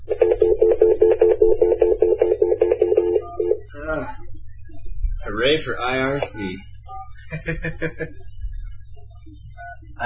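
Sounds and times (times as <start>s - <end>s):
touch-tone beeps of a phone number being dialed: 0.0s - 3.7s
low hum: 0.0s - 10.0s
speech: 5.4s - 6.7s, 7.4s - 8.3s
laughter: 7.2s - 8.2s.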